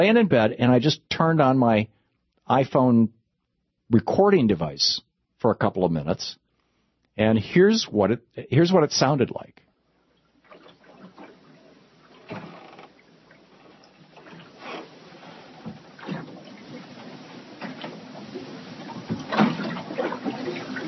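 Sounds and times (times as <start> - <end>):
speech: 0.0 - 3.2, 3.9 - 6.4, 7.2 - 9.6
water sloshing against the hull of a moored boat: 9.9 - 20.8
faint mooring rope creaks: 12.1 - 20.8.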